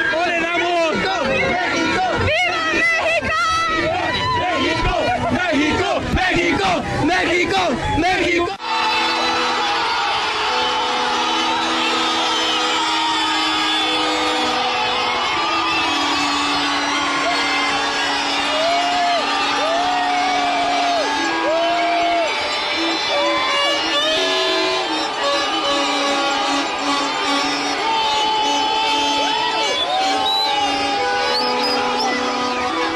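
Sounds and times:
long horn-like tones: 0:00.0 - 0:06.8, 0:08.6 - 0:32.9
massive sustained roar of football crowd cheering: 0:00.0 - 0:32.9
huge football crowd chanting in unison in torrential rain: 0:08.6 - 0:32.9.

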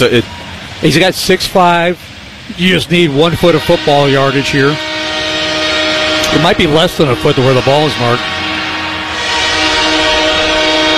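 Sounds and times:
speech: 0:00.0 - 0:04.9, 0:06.3 - 0:08.4
train rolling past: 0:00.0 - 0:10.9
train horn: 0:03.1 - 0:10.9.

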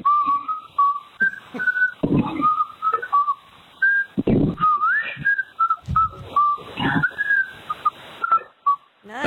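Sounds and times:
man in Oregon whistling a birthday tune: 0:00.0 - 0:08.9
rustling: 0:05.3 - 0:07.9
low thumps: 0:05.7 - 0:06.8.

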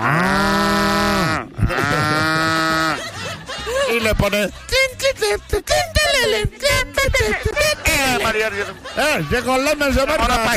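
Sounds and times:
cow mooing from vendor cart: 0:00.0 - 0:03.0
laughter: 0:00.9 - 0:10.5
speech: 0:04.0 - 0:10.5.

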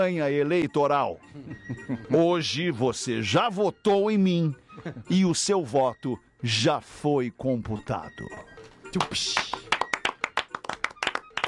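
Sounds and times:
speech: 0:00.0 - 0:09.6
hands clapping: 0:09.0 - 0:11.4.

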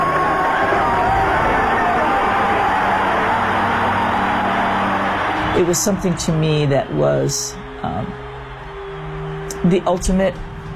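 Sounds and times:
whoops from the crowd: 0:00.0 - 0:05.6, 0:08.0 - 0:09.5
huge stadium crowd screaming and cheering: 0:00.0 - 0:10.7
speech: 0:05.6 - 0:08.3, 0:09.6 - 0:10.5.

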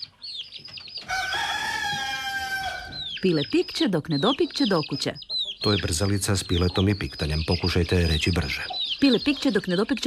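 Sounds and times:
rooster crowing: 0:01.1 - 0:03.1
speech: 0:03.2 - 0:10.0.

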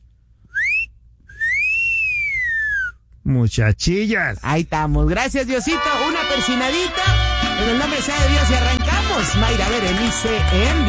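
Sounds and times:
person whistling two loud clear notes: 0:00.5 - 0:03.0
speech: 0:03.3 - 0:10.8.

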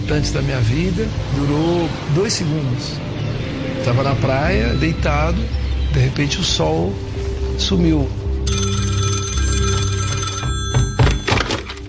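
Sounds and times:
speech: 0:00.1 - 0:08.8
telephone ringing in short bell bursts: 0:08.5 - 0:11.8.

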